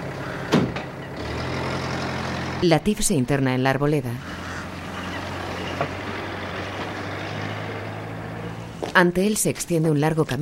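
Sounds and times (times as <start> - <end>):
bus engine rumble: 0.0 - 10.4
speech: 2.6 - 4.3, 5.8 - 6.0, 9.0 - 10.4.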